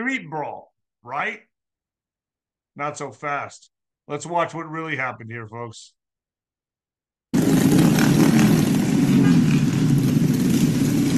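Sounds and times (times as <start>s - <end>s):
speech: 0.0s - 1.5s, 2.8s - 6.0s
scooter and moped engines revving: 7.4s - 11.1s.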